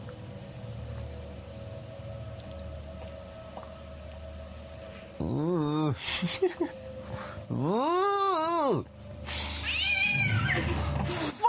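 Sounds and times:
low rumbling background: 0.0s - 11.4s
speech: 5.2s - 8.9s
sharp burst of noise: 5.2s - 11.4s
laughter: 6.0s - 6.8s
cat screech in a horror movie jump scare: 9.4s - 10.8s.

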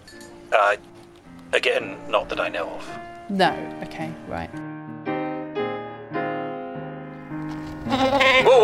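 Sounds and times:
speech: 0.5s - 0.9s, 1.5s - 4.7s, 8.0s - 8.6s
female goat bleating while being held: 7.8s - 8.6s.

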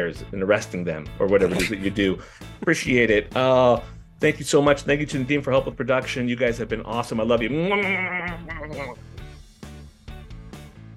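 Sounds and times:
speech: 0.0s - 9.0s
person imitating a sheep bleat: 7.7s - 9.0s.

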